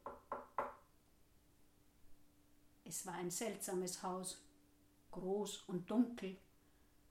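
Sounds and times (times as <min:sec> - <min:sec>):
firm hollow knocks on a wooden door: 0:00.0 - 0:00.8
speech: 0:02.9 - 0:04.5, 0:05.1 - 0:06.5.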